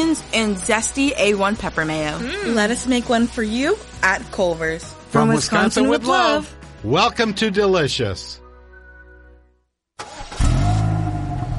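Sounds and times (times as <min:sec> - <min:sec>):
speech: 0:00.1 - 0:08.4
car engine starter cranking, then engine running: 0:10.0 - 0:11.5.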